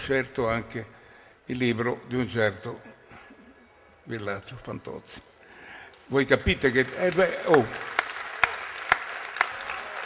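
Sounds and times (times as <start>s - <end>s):
speech: 0.0s - 3.0s, 4.0s - 5.3s, 6.1s - 7.9s
audience applause: 6.5s - 10.0s.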